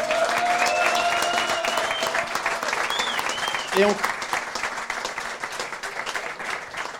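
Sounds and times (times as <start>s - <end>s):
crowd cheers: 0.0s - 4.0s
large crowd applause: 0.0s - 6.9s
crowd whistles: 0.6s - 3.9s.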